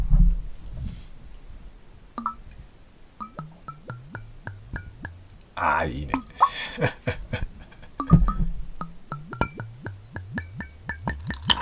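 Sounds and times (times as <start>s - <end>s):
soft rustle: 0.0s - 1.8s
speech: 5.6s - 7.4s
gin glugging out of a bottle into a glass: 6.1s - 6.6s, 10.9s - 11.6s
laughter: 6.4s - 8.0s.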